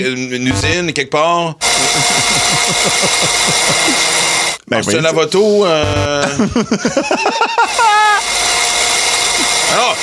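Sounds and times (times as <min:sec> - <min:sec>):
speech: 0:00.0 - 0:08.6, 0:09.7 - 0:10.0
laughter: 0:01.6 - 0:04.3, 0:06.1 - 0:08.2
vacuum cleaner running: 0:01.6 - 0:04.6, 0:07.2 - 0:10.0.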